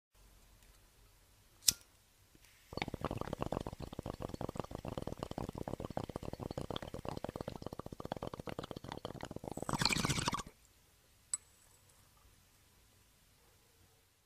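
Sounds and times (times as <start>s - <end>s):
bong bubbling during a rip: 2.7s - 10.5s.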